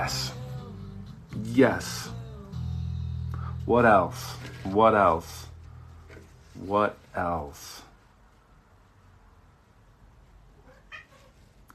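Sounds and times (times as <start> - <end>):
speech: 0.0 - 0.3, 1.6 - 2.1, 3.7 - 5.5, 6.6 - 7.8
steady low hiss: 0.0 - 11.7
single short cat meow: 10.6 - 11.5.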